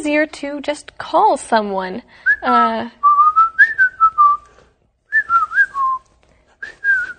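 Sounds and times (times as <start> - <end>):
speech: 0.0 - 3.0
person whistling sliding melodic phrases in a whistled language: 3.0 - 7.1.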